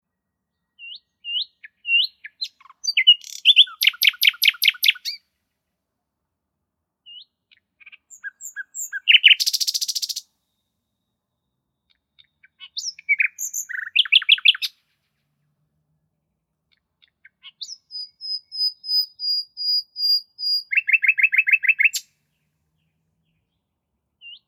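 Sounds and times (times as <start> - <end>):
nightingale birdsong imitation toy: 0.8 - 5.2, 7.1 - 14.8, 16.7 - 22.1.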